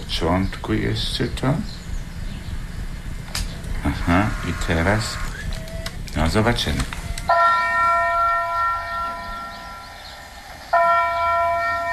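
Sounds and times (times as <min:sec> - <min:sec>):
speech: 0:00.2 - 0:01.8, 0:04.0 - 0:05.3, 0:06.2 - 0:07.0
large town hall bell ringing: 0:07.3 - 0:11.9.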